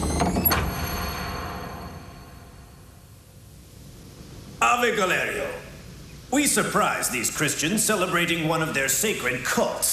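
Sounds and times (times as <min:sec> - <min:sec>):
heavy temple door scraping and thudding shut as it is sealed: 0:00.0 - 0:02.2
speech: 0:04.8 - 0:05.6, 0:06.3 - 0:09.9.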